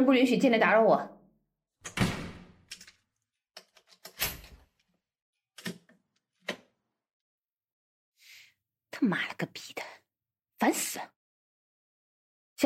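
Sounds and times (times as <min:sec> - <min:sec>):
speech: 0:00.0 - 0:01.2, 0:09.0 - 0:10.0, 0:10.6 - 0:11.2
door being shut in an office: 0:01.8 - 0:02.7.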